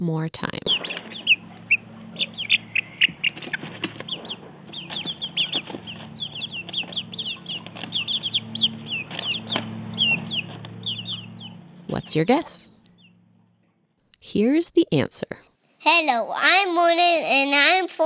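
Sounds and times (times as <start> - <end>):
speech: 0.0 - 1.0, 12.1 - 12.8, 14.2 - 18.0
low steady hum: 0.0 - 15.5
four-week-old chicken chicks cheeping: 0.5 - 13.2.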